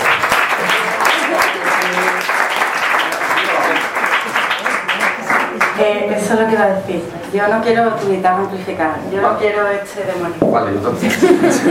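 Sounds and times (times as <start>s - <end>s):
audience applause at a poetry and music recital: 0.0s - 5.8s
speech: 5.8s - 11.7s
laughter: 10.9s - 11.7s.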